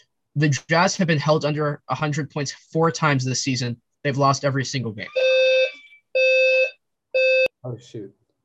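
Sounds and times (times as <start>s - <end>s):
speech: 0.4s - 5.2s, 7.6s - 8.2s
electronic alarm tones: 5.0s - 7.5s.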